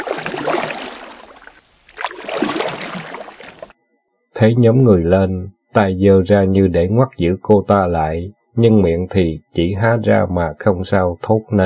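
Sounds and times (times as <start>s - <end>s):
oar paddling a small wooden boat on a pond: 0.0s - 3.7s
speech: 4.4s - 11.6s.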